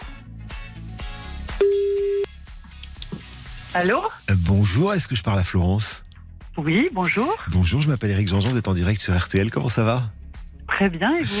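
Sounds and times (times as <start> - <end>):
telephone tone as an outgoing call is placed: 1.6 - 2.3
speech: 3.7 - 10.2, 10.8 - 11.3.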